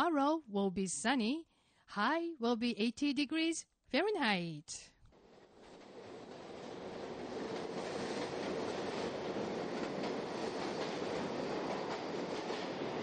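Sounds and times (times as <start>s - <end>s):
speech: 0.0s - 4.9s
subway train clattering along the rails: 5.2s - 13.0s.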